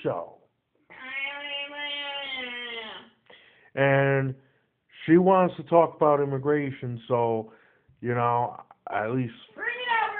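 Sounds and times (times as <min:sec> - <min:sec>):
speech: 0:00.0 - 0:00.3, 0:03.8 - 0:04.4, 0:05.0 - 0:09.6
cat meowing: 0:00.9 - 0:03.1, 0:09.5 - 0:10.1.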